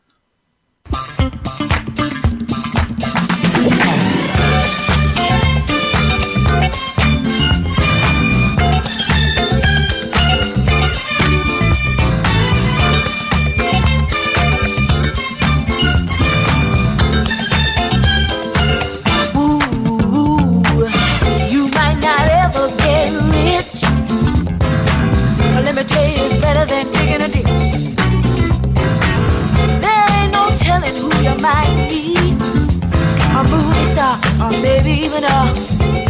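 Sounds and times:
full-band funk-style song: 0.8 - 36.0
punchy bass: 0.9 - 36.0
steady driving beat: 0.9 - 36.0
bright horn or keyboard stabs: 3.3 - 19.5, 20.8 - 30.7.

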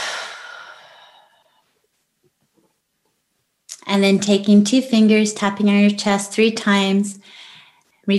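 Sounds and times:
deep exhale after a held breath during a guided breathing exercise: 0.0 - 1.6
speech: 3.9 - 7.4.

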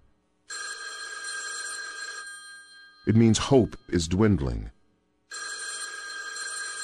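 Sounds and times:
telephone ringing with bright electronic trill: 0.5 - 3.6, 5.3 - 6.8
speech: 3.1 - 4.8.

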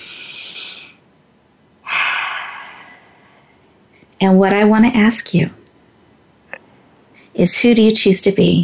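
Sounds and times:
deep breath in and out during a guided seated exercise: 0.0 - 1.0, 1.8 - 3.6
speech: 4.2 - 5.6, 7.4 - 8.6.

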